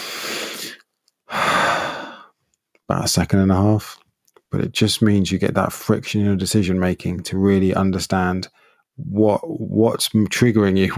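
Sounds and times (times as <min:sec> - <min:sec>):
deep conscious breath drawn slowly through the airways: 0:00.0 - 0:02.3
speech: 0:02.9 - 0:10.9.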